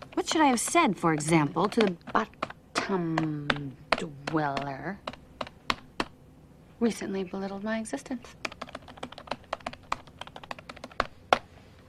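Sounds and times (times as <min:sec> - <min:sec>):
typing on a computer keyboard: 0:00.0 - 0:06.1, 0:08.4 - 0:11.5
speech: 0:00.3 - 0:05.1, 0:06.8 - 0:08.4.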